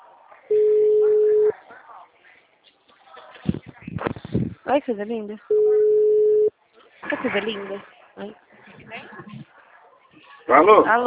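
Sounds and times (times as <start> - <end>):
faint noises: 0.0 - 10.8
telephone ringback tone while a caller waits for an answer: 0.5 - 1.5, 5.5 - 6.5
speech: 4.7 - 5.6, 7.2 - 8.4, 10.5 - 11.0.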